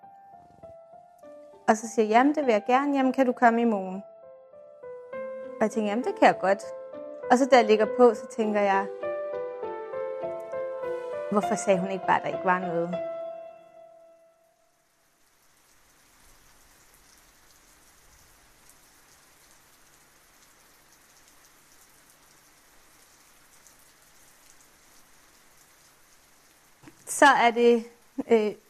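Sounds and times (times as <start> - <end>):
speech: 1.7 - 4.1, 5.6 - 9.0, 11.3 - 13.1, 27.4 - 28.6
heavy rain drumming on a surface: 14.8 - 28.6.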